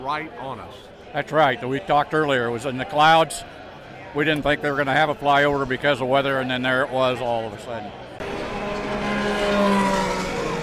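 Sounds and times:
speech: 0.0 - 8.0
IndyCar race cars roaring past on parade lap: 7.8 - 10.6.

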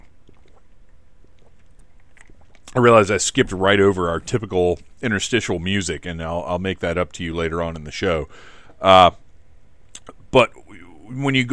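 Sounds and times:
sips of water: 0.0 - 2.8
small wet mouth clicks: 0.0 - 2.8, 9.9 - 10.2
swallow: 0.0 - 2.8
low hum: 0.0 - 11.5
speech: 2.8 - 9.2, 10.3 - 11.5.

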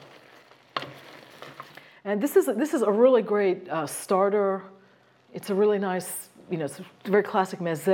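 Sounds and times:
shrimp for a Greek mezze starter sizzling in a frying pan: 0.0 - 2.0
speech: 2.0 - 7.9.

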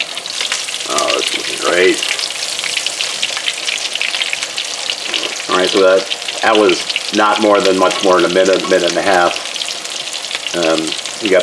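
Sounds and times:
breaded steak frying in hot oil: 0.0 - 11.4
speech: 1.7 - 2.2, 5.6 - 9.3, 10.5 - 11.4.

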